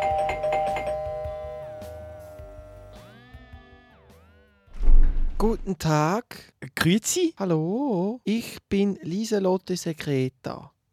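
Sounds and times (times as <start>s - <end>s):
doorbell at the door chiming: 0.0s - 2.9s
speech: 5.4s - 10.7s.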